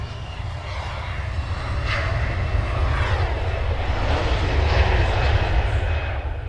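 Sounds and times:
Irish-registered jet airplane roaring past an airport in Copenhagen: 0.0s - 6.4s.

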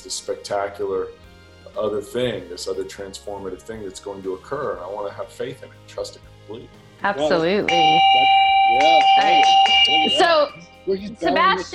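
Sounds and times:
speech: 0.0s - 11.7s
yak bell's sustained metallic ring: 7.2s - 10.8s.

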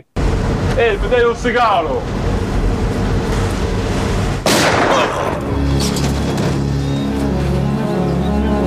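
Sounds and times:
armored car engine rumbling while driving down a road: 0.0s - 4.5s, 5.1s - 8.6s
sustained mechanical drone: 0.2s - 8.6s
speech: 0.8s - 2.4s
gunshot in a film scene: 4.4s - 5.5s.

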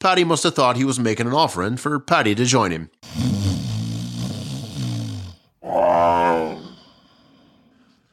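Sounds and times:
speech: 0.0s - 3.3s
sleeping man snoring loudly: 3.0s - 6.9s.

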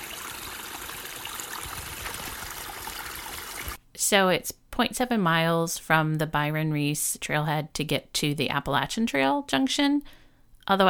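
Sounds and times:
mountain stream flowing over rocks: 0.0s - 3.8s
speech: 4.0s - 10.8s.

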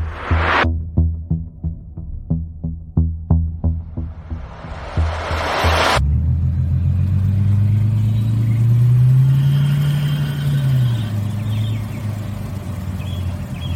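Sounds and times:
car engine rumbling and revving: 0.0s - 13.7s
short burst of noise: 3.8s - 6.0s.

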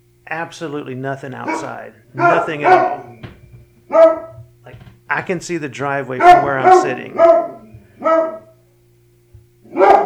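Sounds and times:
low steady hum: 0.0s - 10.0s
speech: 0.3s - 3.2s, 3.9s - 4.2s, 5.2s - 7.5s
dog barking at something outside near a driveway: 1.4s - 3.2s, 3.9s - 4.4s, 6.2s - 8.6s, 9.7s - 10.0s.

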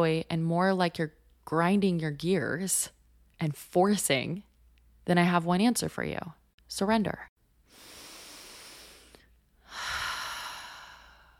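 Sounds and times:
speech: 0.0s - 7.3s
deep breath: 7.7s - 11.3s.

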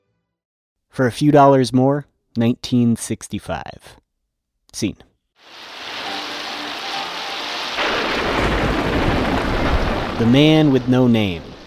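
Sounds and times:
speech: 1.0s - 4.0s, 4.7s - 5.8s, 10.2s - 11.5s
dense rain on a hard street surface: 5.4s - 11.6s.

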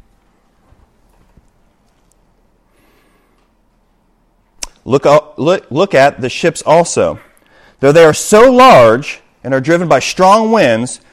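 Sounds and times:
horse hooves clip-clopping: 0.0s - 2.5s
low hum: 0.0s - 11.1s
speech: 4.9s - 11.0s.

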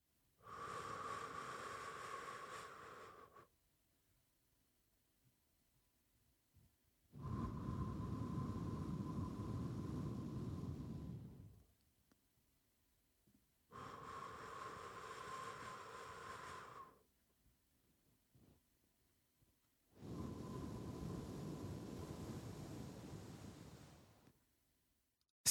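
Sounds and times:
slow breathing in through the nose and out through the mouth: 0.4s - 3.5s, 7.2s - 11.6s, 13.7s - 17.1s, 20.0s - 24.0s.

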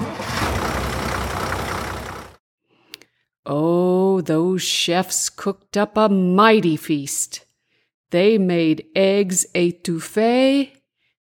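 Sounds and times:
heavy flatbed truck engine hauling a load of eggs rumbling: 0.0s - 2.4s
speech: 3.5s - 7.5s, 8.1s - 10.8s.

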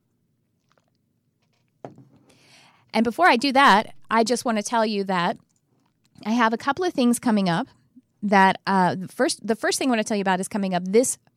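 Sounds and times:
person sipping a drink: 0.6s - 2.3s
speech: 2.9s - 5.4s, 6.2s - 11.3s.

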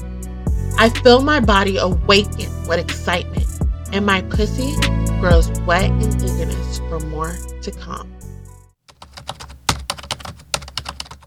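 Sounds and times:
speech: 0.8s - 8.2s
fingers angrily typing on a work laptop keyboard: 8.9s - 11.2s.

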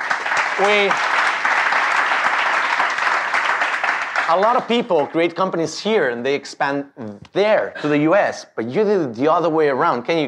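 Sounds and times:
audience applauding at a live onstage talk: 0.0s - 5.3s
speech: 0.6s - 1.2s, 4.3s - 10.2s.

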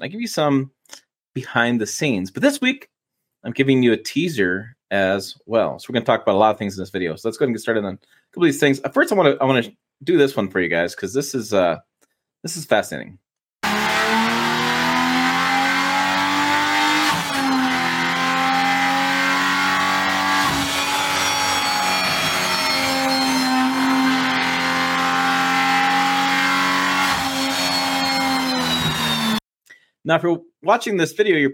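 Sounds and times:
speech: 0.0s - 13.9s, 30.1s - 31.5s
new inline-six Hurricane engine revving in durability testing: 13.6s - 29.4s.

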